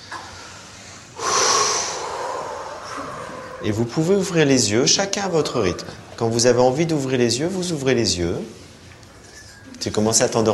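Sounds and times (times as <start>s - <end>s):
deep breath in during guided meditation: 0.3s - 3.6s
speech: 3.6s - 8.6s, 9.8s - 10.5s.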